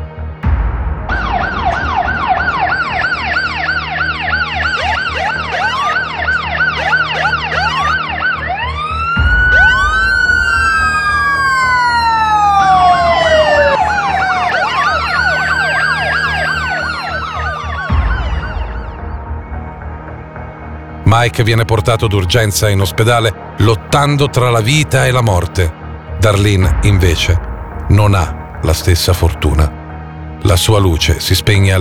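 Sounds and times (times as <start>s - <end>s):
police and ambulance sirens arriving on the scene: 1.1s - 19.2s
speech: 21.2s - 29.8s, 30.4s - 31.7s.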